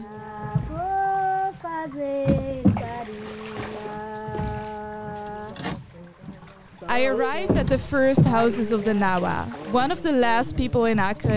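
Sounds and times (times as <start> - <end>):
boat motor humming on a forest river: 0.0 - 11.3
low thumps: 0.0 - 11.3
water splashing on a forest river: 0.0 - 11.3
speech: 7.0 - 11.3.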